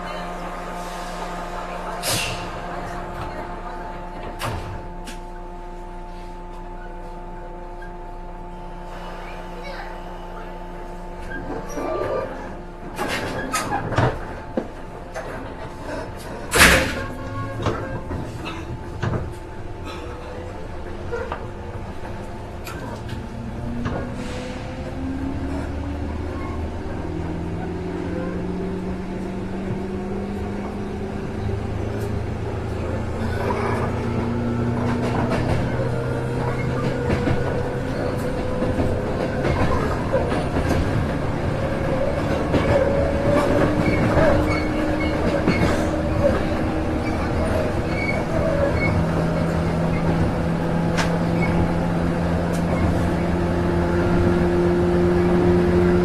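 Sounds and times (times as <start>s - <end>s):
Joban rapid train series 103: 0.0s - 56.0s.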